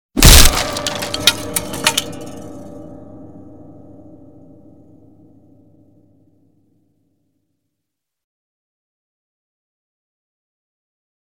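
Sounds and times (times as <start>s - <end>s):
guitar being smashed and broken: 0.2s - 3.2s.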